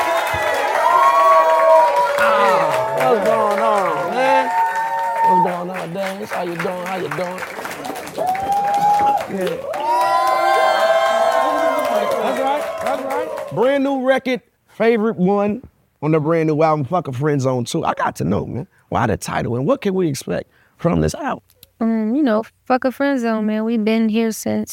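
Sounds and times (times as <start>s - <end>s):
live audience cheering and whooping as a performer is introduced: 0.0s - 6.0s, 7.4s - 13.8s
speech: 5.4s - 7.5s, 9.3s - 10.2s, 11.9s - 24.7s.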